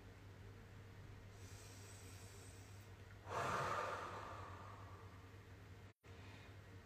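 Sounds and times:
faint low hum: 0.0s - 6.8s
deep breath in and out during a guided breathing exercise: 1.3s - 5.3s.

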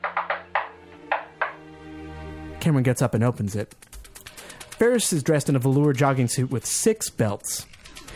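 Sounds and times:
rhythmic stylized knocking on a door: 0.0s - 1.6s
speech: 2.6s - 3.8s, 4.8s - 7.7s.

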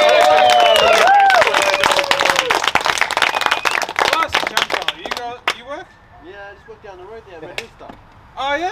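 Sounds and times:
crowd whoops and cheers: 0.0s - 2.6s
crowd clapping: 0.0s - 5.6s
speech: 6.9s - 8.6s.

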